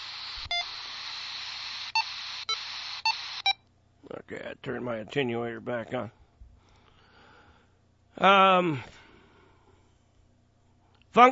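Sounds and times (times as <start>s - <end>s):
loud radio static hiss: 0.0s - 3.6s
radio transceiver beeps from reverse button use: 0.1s - 3.6s
speech: 4.1s - 6.2s, 8.2s - 9.0s, 11.2s - 11.3s.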